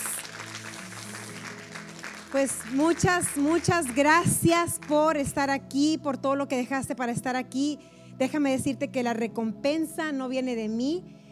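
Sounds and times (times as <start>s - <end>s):
crowd applauding at a religious gathering: 0.0s - 5.1s
speech: 2.3s - 11.2s
faint low musical hum: 2.3s - 11.3s.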